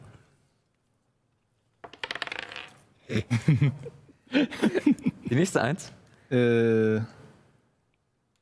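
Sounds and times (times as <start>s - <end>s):
dice clattering across a hard table surface: 1.8s - 2.9s
laughter: 3.1s - 5.4s
speech: 3.1s - 7.2s.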